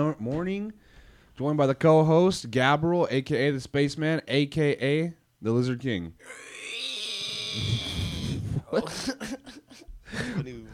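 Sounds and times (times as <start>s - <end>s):
speech: 0.0s - 6.9s, 7.5s - 10.7s
person vocally imitating a reptilian pterodactyl screech: 6.2s - 8.7s
short choppy vocal bursts: 6.2s - 9.1s
laughter: 8.5s - 10.7s.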